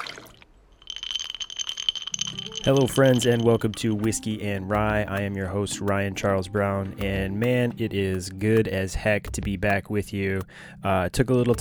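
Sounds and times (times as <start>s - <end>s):
ice cubes clinking against a glass: 0.0s - 3.3s
speech: 2.6s - 11.5s.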